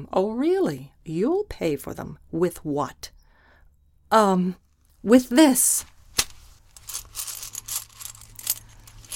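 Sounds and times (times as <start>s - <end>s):
speech: 0.0s - 3.2s, 4.1s - 5.9s
bag of large silver and solid gold ancient coins set down and opened: 6.1s - 9.1s
large silver and solid gold ancient coins clinking and jingling: 6.7s - 9.1s.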